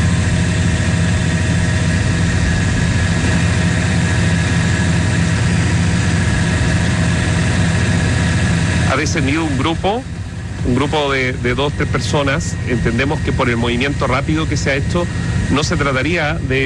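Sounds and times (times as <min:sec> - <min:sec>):
turbines of a parked airplane running: 0:00.0 - 0:16.6
speech: 0:09.0 - 0:16.6.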